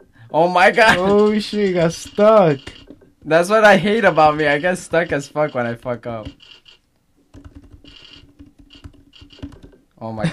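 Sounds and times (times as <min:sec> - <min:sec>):
speech: 0:00.3 - 0:06.6, 0:10.0 - 0:10.3
rapid typing on a computer keyboard: 0:01.0 - 0:03.0, 0:04.1 - 0:09.8.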